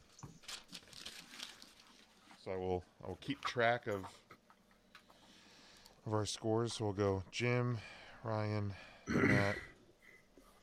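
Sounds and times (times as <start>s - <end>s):
paper being pulled out and crinkled: 0.1s - 2.5s
speech: 2.4s - 4.2s, 6.0s - 9.7s.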